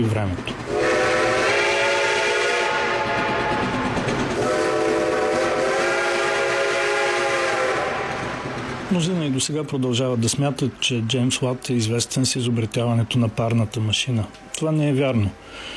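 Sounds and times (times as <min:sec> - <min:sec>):
speech: 0:00.0 - 0:01.0, 0:08.9 - 0:15.7
train rumbling and rattling getting underway: 0:00.0 - 0:15.7
train horn blaring: 0:00.7 - 0:08.5.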